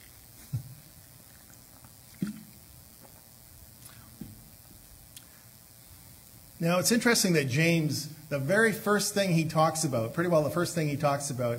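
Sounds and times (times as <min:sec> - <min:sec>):
person gulping water: 0:01.4 - 0:03.2
speech: 0:06.6 - 0:11.5.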